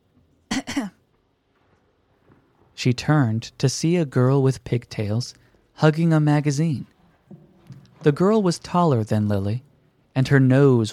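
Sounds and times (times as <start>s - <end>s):
person clearing throat in a library: 0.5s - 1.0s
speech: 0.8s - 1.0s, 2.8s - 6.9s, 8.0s - 10.9s.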